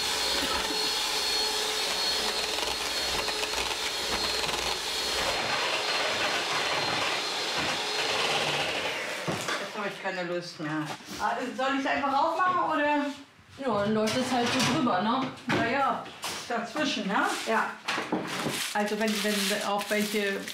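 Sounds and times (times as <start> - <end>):
electric mixer whipping cream: 0.0 - 9.8
speech: 10.1 - 17.8, 18.8 - 20.5.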